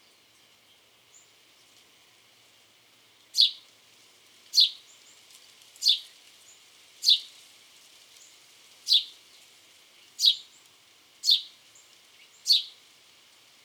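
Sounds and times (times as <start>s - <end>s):
house sparrow Passer domesticus chirping: 3.4s - 3.6s, 10.2s - 10.4s, 11.2s - 11.5s, 12.4s - 12.8s.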